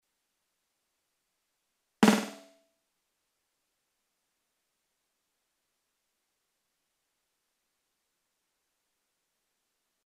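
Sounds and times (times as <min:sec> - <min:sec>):
snare drum with short delay: 0:02.0 - 0:02.6.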